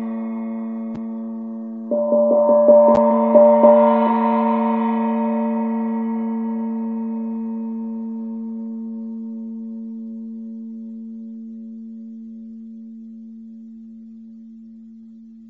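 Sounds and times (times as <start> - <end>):
tam-tam: 1.8 - 8.6.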